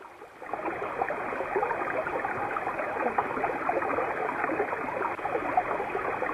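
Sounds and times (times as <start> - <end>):
running water from springs: 0.0 - 6.3.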